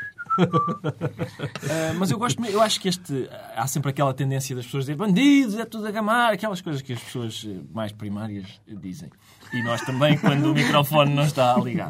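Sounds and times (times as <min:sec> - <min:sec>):
person whistling a downward sliding note: 0:00.0 - 0:01.0
laughter: 0:00.4 - 0:02.0, 0:09.5 - 0:11.8
speech: 0:00.4 - 0:11.8.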